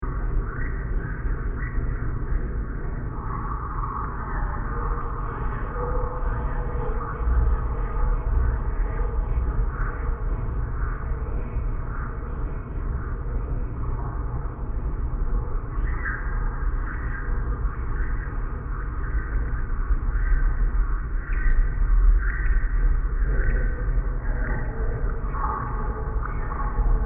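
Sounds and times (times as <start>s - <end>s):
deep scary ambience: 0.0s - 27.0s
scary alien noises: 0.0s - 27.0s.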